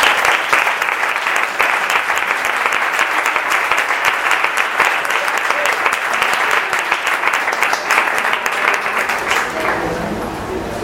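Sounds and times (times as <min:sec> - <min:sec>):
audience applause greeting a performer: 0:00.0 - 0:10.7.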